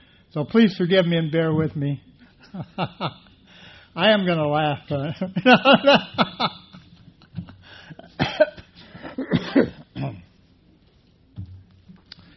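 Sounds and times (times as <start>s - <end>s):
speech: 0.4s - 3.3s, 4.0s - 6.6s
person coughing: 8.1s - 10.3s
throat clearing: 8.2s - 10.3s.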